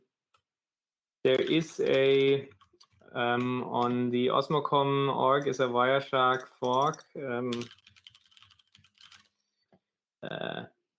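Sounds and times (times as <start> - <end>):
speech: 1.2 - 7.8
typing on a computer keyboard: 6.7 - 9.3.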